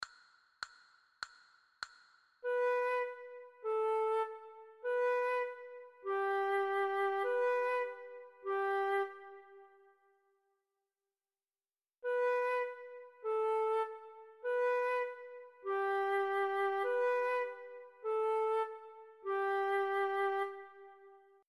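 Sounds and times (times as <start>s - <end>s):
recorder melody from a beginner method: 2.4s - 9.8s, 12.0s - 21.1s.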